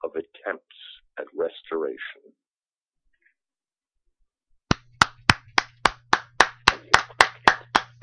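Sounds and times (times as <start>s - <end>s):
single person applauding after a poem reading: 4.7s - 8.0s.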